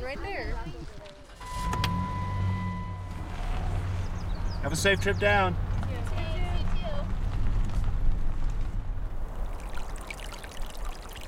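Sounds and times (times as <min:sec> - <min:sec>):
low rumbling undertone: 0:01.4 - 0:11.2
speech: 0:04.7 - 0:05.6
water trickling through a culvert on a dry mountain: 0:09.1 - 0:11.2.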